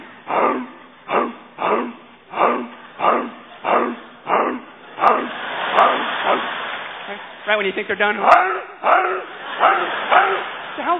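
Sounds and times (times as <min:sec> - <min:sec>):
dog barking: 0:00.4 - 0:06.4, 0:08.2 - 0:10.4
speech: 0:07.6 - 0:10.9.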